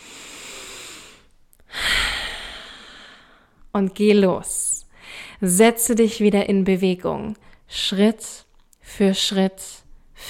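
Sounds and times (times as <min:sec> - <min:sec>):
deep breath taken during a guided meditation: 0:00.0 - 0:03.6, 0:04.9 - 0:05.4
speech: 0:03.8 - 0:04.6, 0:05.4 - 0:10.2.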